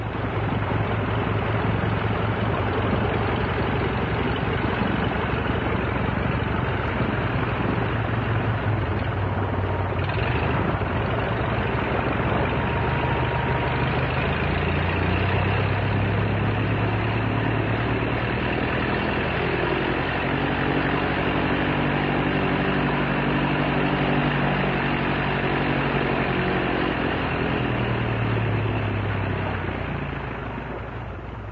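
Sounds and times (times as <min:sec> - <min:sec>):
vintage OX-5 V8 aircraft engine idling: 0:00.0 - 0:31.4.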